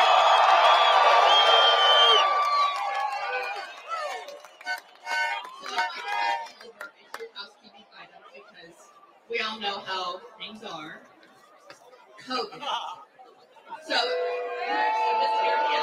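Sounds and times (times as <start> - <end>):
presidential campaign rally crowd cheering and shouting in Washington, D.C.: 0.0 - 6.4, 13.7 - 15.8
chatter and voices at a rally: 3.2 - 15.8.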